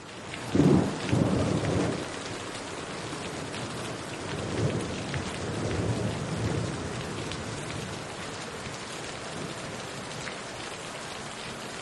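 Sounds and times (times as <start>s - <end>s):
heavy cold rain: 0.0s - 11.8s
deep thunder rumbling: 0.5s - 8.1s.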